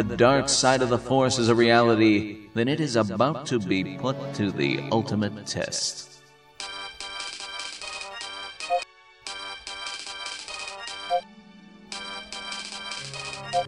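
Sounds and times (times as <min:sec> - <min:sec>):
speech: 0:00.0 - 0:06.7
bright electronic comlink ringtone trilling: 0:06.6 - 0:11.2, 0:11.9 - 0:13.6.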